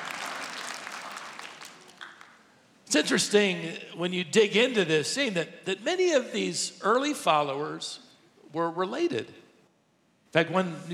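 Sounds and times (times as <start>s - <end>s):
audience applauding a couple married 43 years: 0.0s - 2.5s
speech: 2.9s - 9.4s, 10.3s - 10.9s.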